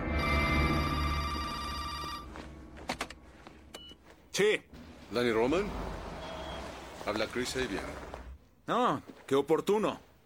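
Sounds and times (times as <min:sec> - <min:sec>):
telephone ringing with a bright tonal bell: 0:00.2 - 0:02.5
speech: 0:04.4 - 0:05.9, 0:07.1 - 0:10.1.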